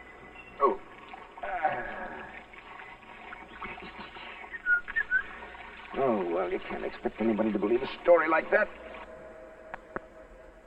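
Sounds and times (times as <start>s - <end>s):
running shower water hissing: 0.7s - 9.1s
person whistling a tune: 4.5s - 5.3s
speech: 6.5s - 8.8s.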